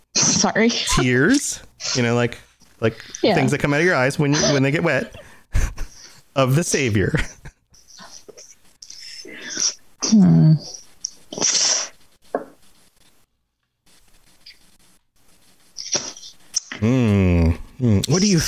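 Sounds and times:
speech: 0:00.4 - 0:05.3, 0:06.4 - 0:07.4, 0:10.1 - 0:10.8, 0:17.8 - 0:18.4
marker squeaking across a surface: 0:07.8 - 0:09.8, 0:10.6 - 0:13.0, 0:14.0 - 0:16.8.

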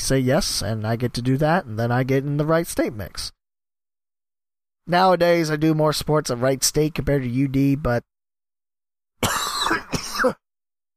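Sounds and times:
speech: 0:00.1 - 0:03.4, 0:04.8 - 0:08.1, 0:10.2 - 0:10.4
harsh raspy phlegmy coughing: 0:09.2 - 0:10.5.

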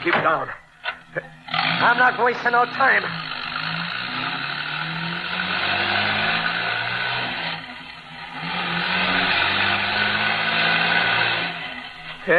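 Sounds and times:
speech: 0:00.0 - 0:03.8
car engine roaring at speed: 0:00.0 - 0:12.3
road noise: 0:00.0 - 0:12.3.

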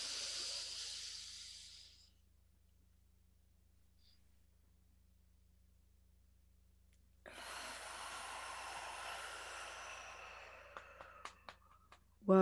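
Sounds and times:
deep breath drawn in during a guided breathing exercise: 0:00.0 - 0:02.2, 0:07.2 - 0:11.8.

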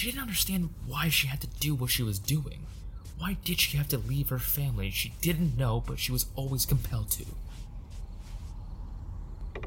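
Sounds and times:
speech: 0:00.0 - 0:07.7
soft scraping swishes: 0:01.6 - 0:09.0
house front door creaking open: 0:09.4 - 0:09.6.

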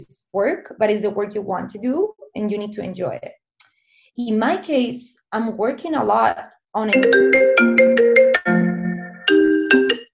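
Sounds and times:
speech: 0:00.0 - 0:03.4, 0:04.2 - 0:08.2
phone ringtone from incoming call, bright electronic melody: 0:06.9 - 0:10.1.

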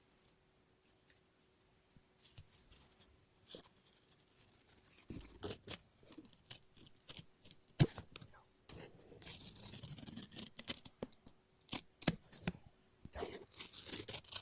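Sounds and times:
scissors snipping and cutting paper: 0:03.5 - 0:08.0, 0:09.2 - 0:11.0, 0:13.1 - 0:14.4.

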